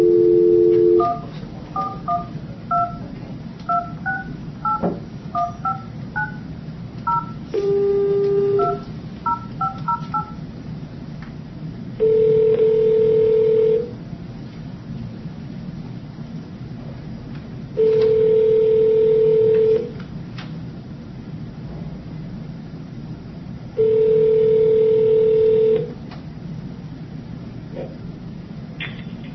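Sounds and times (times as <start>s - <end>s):
telephone keypad dialing tones: 0.0s - 3.0s, 5.4s - 6.4s, 7.1s - 10.4s, 12.0s - 13.8s, 17.8s - 19.9s, 23.8s - 25.9s.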